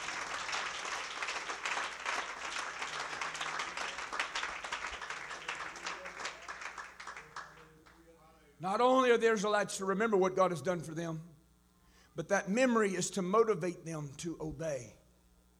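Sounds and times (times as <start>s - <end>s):
church congregation clapping hands: 0.0s - 8.1s
speech: 8.6s - 11.3s, 12.2s - 15.0s.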